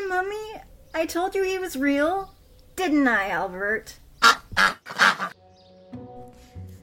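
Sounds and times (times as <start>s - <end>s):
speech: 0.2s - 4.8s
duck giving loud raspy quacks: 4.2s - 5.4s.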